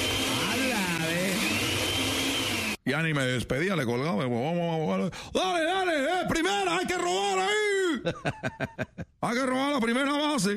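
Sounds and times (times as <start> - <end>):
electric blender running with a grinding motor: 0.0 - 2.8
speech: 2.9 - 10.5
laughter: 7.9 - 9.2.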